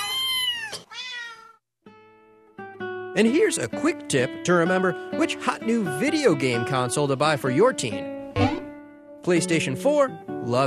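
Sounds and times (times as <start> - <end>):
cat meowing loudly: 0.0 - 1.6
speech: 3.2 - 8.6, 9.3 - 10.6.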